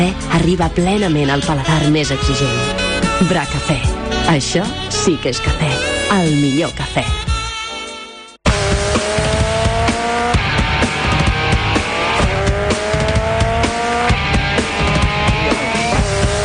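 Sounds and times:
speech: 0:00.0 - 0:07.3
new-generation go-kart engines racing on fresh asphalt at an indoor karting track: 0:08.5 - 0:16.4.

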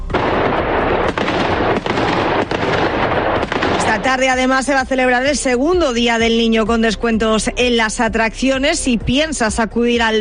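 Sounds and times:
fireworks display bursting at night at the San Fernando fair opening in Cáceres Spain: 0:00.1 - 0:04.4
speech: 0:04.1 - 0:10.1.

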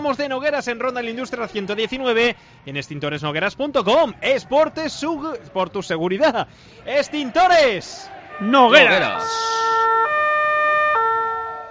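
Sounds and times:
speech: 0:00.0 - 0:09.7
two-tone electronic siren sound effect during a football match commentary: 0:08.4 - 0:11.7.

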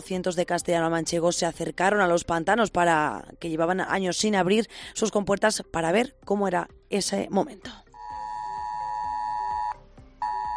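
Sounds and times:
speech: 0:00.0 - 0:07.8
ES-Alert emergency alert tone on a mobile phone: 0:08.0 - 0:10.5.

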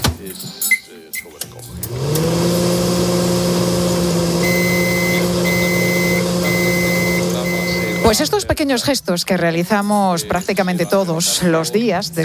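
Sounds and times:
speech: 0:00.2 - 0:02.1, 0:08.1 - 0:12.2
microwave oven heating a cup of milk with a droning hum: 0:01.7 - 0:08.2.

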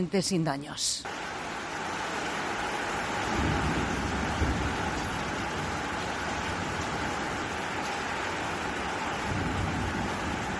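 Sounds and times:
speech: 0:00.0 - 0:01.3
heavy rain pouring: 0:01.0 - 0:10.5
low thunder rumbling: 0:03.2 - 0:10.5.

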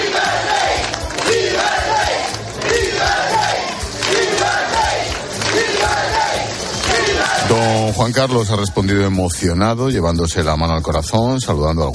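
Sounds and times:
large crowd cheering and shouting: 0:00.0 - 0:09.1
speech: 0:08.0 - 0:11.9.

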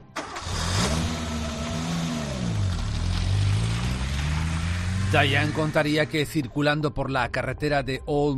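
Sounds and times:
car engine turning over, catching and running: 0:00.0 - 0:06.4
speech: 0:05.1 - 0:08.3.

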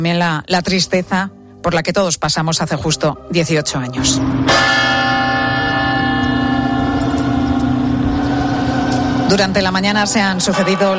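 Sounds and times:
speech: 0:00.0 - 0:05.2, 0:09.3 - 0:10.9
large clock tower bell tolling: 0:04.2 - 0:09.3.

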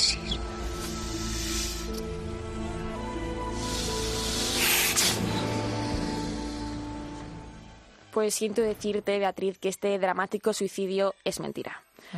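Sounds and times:
snake hissing in long airy bursts: 0:00.0 - 0:07.7
steady low musical drone: 0:00.0 - 0:08.1
speech: 0:08.2 - 0:12.1.

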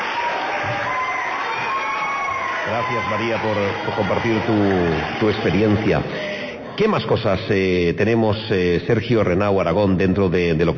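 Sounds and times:
crowd applauding the students of a school musical: 0:00.0 - 0:06.4
speech: 0:02.7 - 0:10.7.

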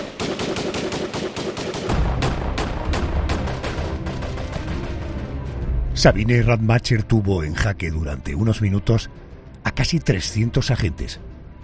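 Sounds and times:
exchange of rapid gunshots: 0:00.0 - 0:05.2
speech: 0:06.0 - 0:11.3.

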